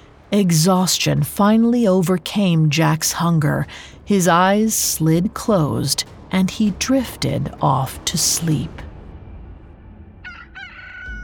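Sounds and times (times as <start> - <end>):
steady low rumble: 0.0 - 11.2
speech: 0.3 - 8.9
rooster crowing: 10.2 - 11.2.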